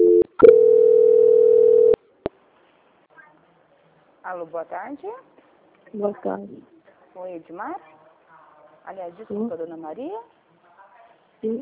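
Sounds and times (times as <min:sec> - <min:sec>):
telephone line tone during a call transfer: 0:00.0 - 0:02.0
speech: 0:04.3 - 0:08.0, 0:08.8 - 0:10.4, 0:11.4 - 0:11.6.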